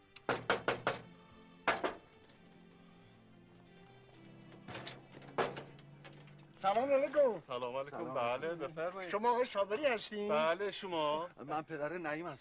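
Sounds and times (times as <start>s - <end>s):
knuckles knocking on a door: 0.3s - 1.1s, 1.7s - 2.0s
speech: 6.6s - 12.4s.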